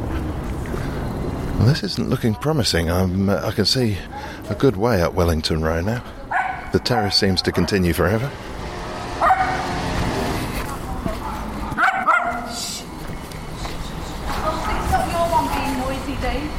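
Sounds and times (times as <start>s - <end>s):
street noise: 0.0s - 16.5s
traffic: 0.0s - 16.5s
speech: 1.6s - 8.5s
dog barking: 6.3s - 7.7s, 9.2s - 9.8s, 11.7s - 12.6s.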